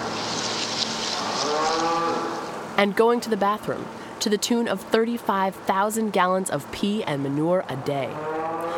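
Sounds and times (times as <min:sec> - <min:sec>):
Holstein dairy cows munching hay: 0:00.0 - 0:02.6
steady wash of noise on a dairy farm: 0:00.0 - 0:08.7
Holstein dairy cows mooing in long pens on a dairy farm: 0:01.2 - 0:02.5, 0:07.7 - 0:08.7
speech: 0:02.8 - 0:08.7.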